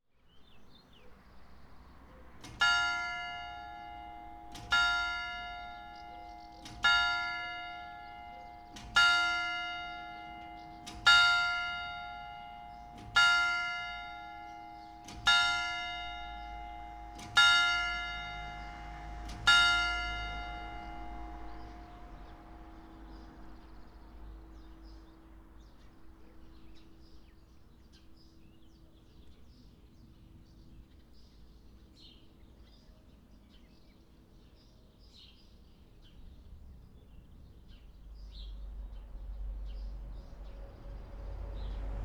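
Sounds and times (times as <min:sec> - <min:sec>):
clock: 0:02.4 - 0:22.7.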